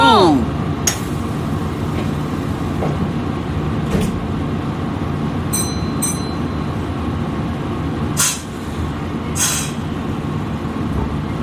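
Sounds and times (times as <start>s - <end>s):
KiHa 40 diesel railcar engine rumbling as the train pulls away in Japan: 0.0s - 11.4s
hissing air bursts from a diesel railcar: 8.1s - 9.9s.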